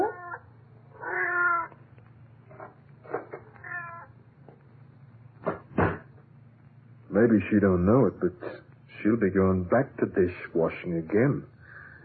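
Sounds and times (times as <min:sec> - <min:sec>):
cat meowing: 0:00.0 - 0:01.8, 0:02.6 - 0:04.2
speech: 0:07.2 - 0:11.5.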